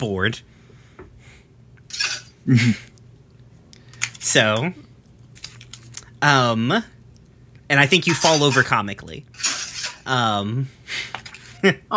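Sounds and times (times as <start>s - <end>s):
speech: 0.0s - 0.6s, 1.9s - 2.9s, 4.2s - 4.8s, 6.2s - 7.0s, 7.7s - 9.5s, 10.1s - 11.9s
dishes and cutlery clattering during washing-up: 1.9s - 2.3s, 8.1s - 8.7s.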